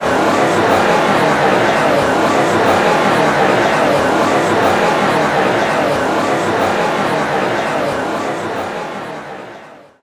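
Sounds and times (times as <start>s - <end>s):
laughter: 0.0s - 9.7s
raucous crowd: 0.0s - 10.0s.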